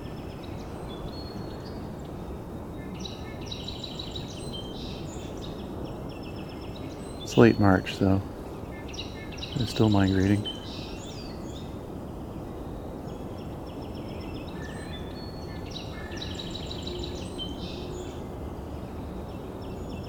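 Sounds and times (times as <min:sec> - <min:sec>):
song sparrow singing bright notes and buzzy trills: 0:00.0 - 0:20.0
speech: 0:07.4 - 0:08.3, 0:09.6 - 0:10.5.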